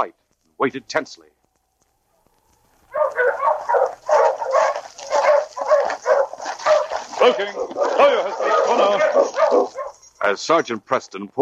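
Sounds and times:
speech: 0.0 - 1.3, 7.2 - 11.3
pack of sled dogs barking and yipping: 2.1 - 10.4.

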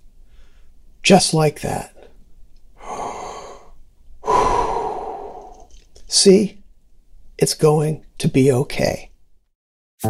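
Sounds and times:
deep breathing: 0.2 - 0.8, 2.8 - 5.9
speech: 1.1 - 1.9, 6.1 - 6.6, 7.4 - 9.1.

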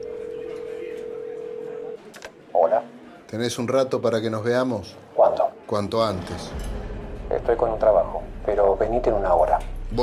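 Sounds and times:
dial tone from a public telephone at the end of a bar: 0.0 - 2.2
faint murmur in a bar: 0.0 - 10.0
speech: 2.6 - 5.0, 5.7 - 6.7, 7.3 - 10.0.

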